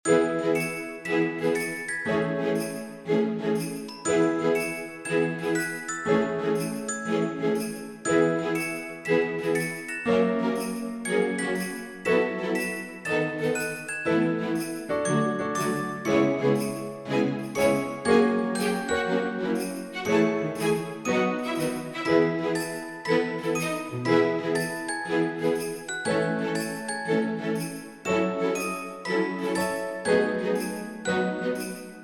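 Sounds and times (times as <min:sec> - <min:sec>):
christmas music loop: 0:00.0 - 0:32.0.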